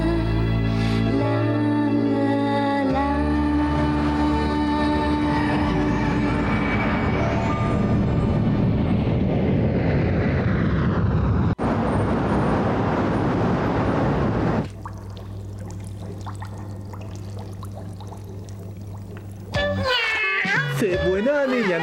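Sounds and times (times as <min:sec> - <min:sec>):
low hum: 0:00.0 - 0:19.8
cat meowing: 0:19.8 - 0:20.8.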